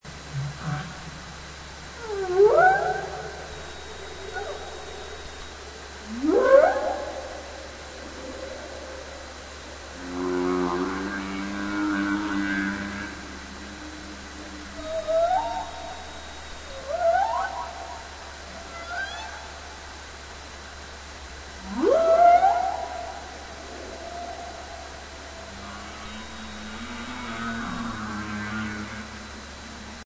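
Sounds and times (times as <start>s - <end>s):
humpback whale in Douglas Channel: 0.1s - 30.0s.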